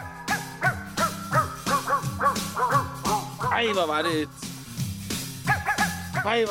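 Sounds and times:
dog barks pitched to notes tracing a pop melody: 0:00.0 - 0:03.9, 0:05.4 - 0:06.4
speech: 0:03.6 - 0:04.4, 0:06.2 - 0:06.4.

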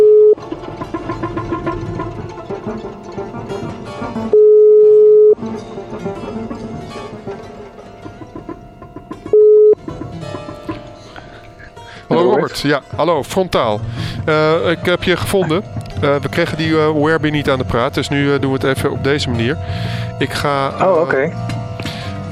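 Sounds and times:
outgoing phone call ringing tone beeps: 0:00.0 - 0:00.4, 0:04.3 - 0:05.4, 0:09.3 - 0:09.8
busy music: 0:00.3 - 0:22.2
speech: 0:12.6 - 0:21.5.

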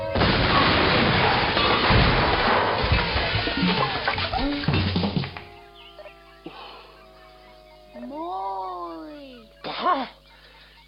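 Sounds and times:
barrel exploding when a vibration starts: 0:00.1 - 0:05.4
shrill squawking animal-like cries: 0:05.2 - 0:10.5.

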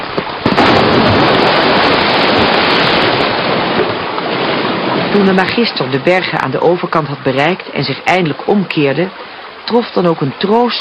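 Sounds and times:
rushing floodwater as a dike collapses: 0:00.0 - 0:10.8
speech: 0:05.2 - 0:10.8.

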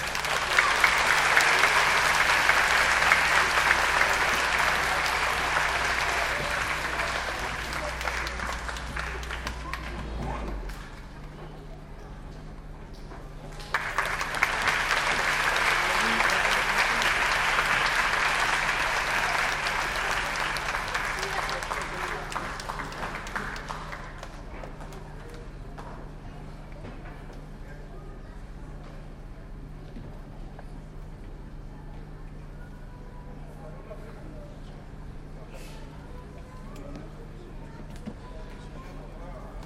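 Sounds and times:
large audience applauding musicians at a music and dance show: 0:00.0 - 0:11.0, 0:13.5 - 0:25.9.

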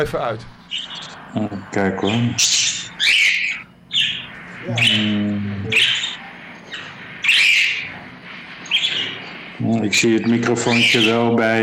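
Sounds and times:
speech: 0:00.0 - 0:03.2, 0:04.6 - 0:05.9, 0:09.6 - 0:11.6
pet bird squawking loudly: 0:02.4 - 0:05.1, 0:05.7 - 0:08.0, 0:08.7 - 0:09.2, 0:10.7 - 0:11.2.

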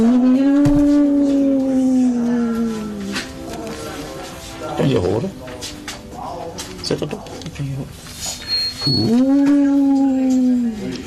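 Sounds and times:
single sustained wolf howl: 0:00.0 - 0:03.1, 0:09.0 - 0:11.0
speech: 0:04.9 - 0:05.4, 0:06.9 - 0:09.8.

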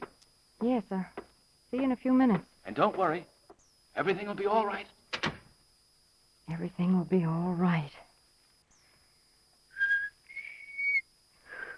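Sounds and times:
speech: 0:00.6 - 0:03.3, 0:04.0 - 0:05.0, 0:06.5 - 0:08.0
person trying to whistle with breathy attempts: 0:09.7 - 0:11.7.

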